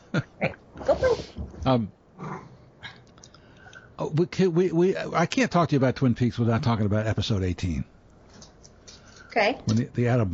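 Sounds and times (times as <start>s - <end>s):
speech: 0.1s - 0.6s, 1.7s - 2.0s, 4.0s - 7.9s, 9.4s - 10.3s
dogs making strange vocal noises: 2.2s - 2.6s.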